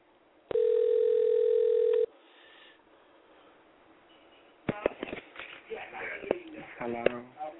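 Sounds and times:
telephone line tone as a call is connected over a switchboard: 0:00.5 - 0:02.1.

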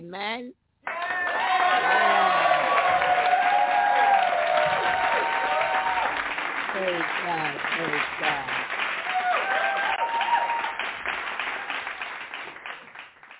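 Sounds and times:
speech: 0:00.1 - 0:02.2, 0:06.8 - 0:08.7
audience at an evening Christian church service clapping: 0:00.8 - 0:13.3
voices calling out and cheering: 0:00.9 - 0:10.8.

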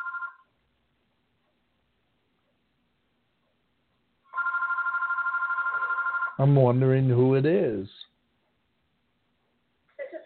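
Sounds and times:
landline telephone ringing with a trilling electronic bell: 0:00.0 - 0:00.5, 0:04.3 - 0:06.6
speech: 0:06.4 - 0:08.1.

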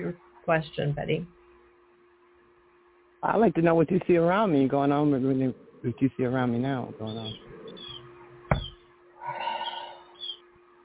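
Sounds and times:
speech: 0:00.0 - 0:01.4, 0:03.2 - 0:07.5
faint short bird chirps outdoors: 0:05.7 - 0:10.4
sharp tap: 0:08.5 - 0:08.8.

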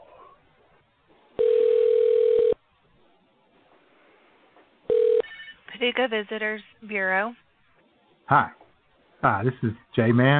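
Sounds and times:
telephone ringing tone: 0:01.4 - 0:02.6, 0:04.9 - 0:05.5
speech: 0:05.8 - 0:07.4, 0:08.3 - 0:08.6, 0:09.2 - 0:10.3.

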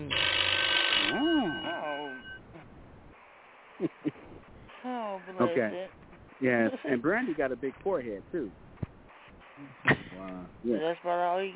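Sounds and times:
telephone ringing with a warbling electronic tone: 0:00.1 - 0:02.5
speech: 0:05.5 - 0:08.7, 0:09.6 - 0:11.5.

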